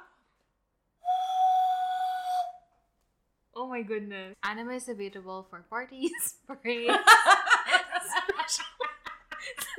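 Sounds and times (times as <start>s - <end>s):
person whistling imitating a conch shell horn blast: 1.0s - 2.8s
speech: 3.8s - 8.8s.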